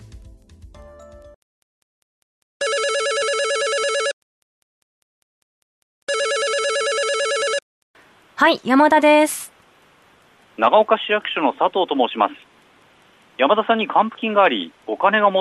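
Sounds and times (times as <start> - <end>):
telephone ringing with a bright warbling electronic trill: 2.6 - 4.2, 6.1 - 7.6
speech: 8.4 - 9.6, 10.6 - 12.5, 13.4 - 15.3.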